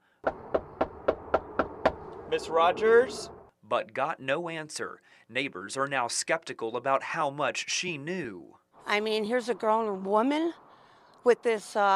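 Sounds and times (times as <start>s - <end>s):
firm knocking on a front door: 0.2s - 2.0s
speech: 2.3s - 10.6s, 11.2s - 11.9s.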